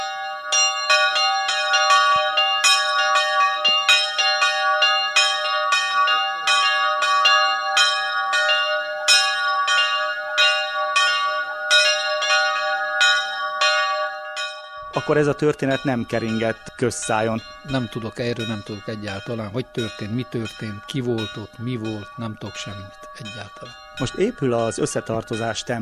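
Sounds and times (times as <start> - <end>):
large church bell ringing: 0.0 - 25.8
speech: 15.1 - 25.8.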